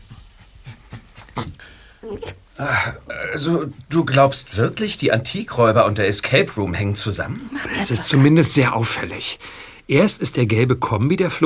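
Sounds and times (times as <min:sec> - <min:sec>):
dog panting: 0:00.0 - 0:09.0
dog whimpering: 0:00.1 - 0:03.1
speech: 0:02.0 - 0:11.4.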